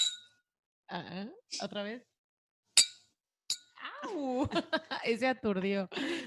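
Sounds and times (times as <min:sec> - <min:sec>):
champagne glasses clinking in a toast: 0:00.0 - 0:00.4, 0:02.8 - 0:03.8
speech: 0:00.9 - 0:02.1, 0:04.0 - 0:06.2
laughter: 0:04.0 - 0:06.2.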